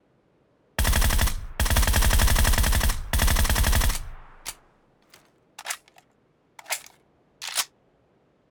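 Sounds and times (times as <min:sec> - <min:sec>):
suppressed Groza full auto gunfire: 0:00.8 - 0:04.6, 0:05.6 - 0:06.0, 0:06.6 - 0:07.7.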